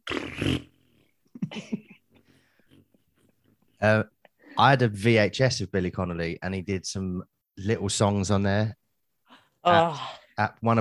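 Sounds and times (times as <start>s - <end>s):
vocal imitation of a long fart: 0.0s - 1.1s
speech: 3.8s - 8.8s, 9.6s - 10.7s.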